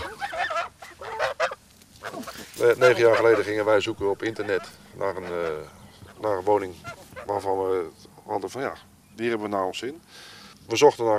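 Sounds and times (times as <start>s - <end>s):
farm geese honking: 0.0s - 7.8s
speech: 2.6s - 11.1s.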